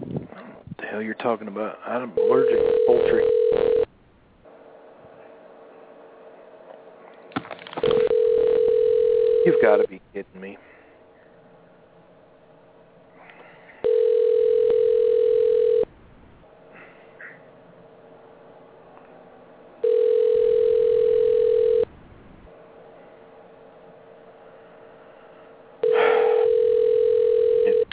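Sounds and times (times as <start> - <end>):
speech: 1.0 - 3.8, 9.7 - 10.8
telephone ringing with a buzzing tone: 2.2 - 3.9, 7.8 - 9.9, 13.8 - 15.9, 19.8 - 21.9, 25.8 - 27.9.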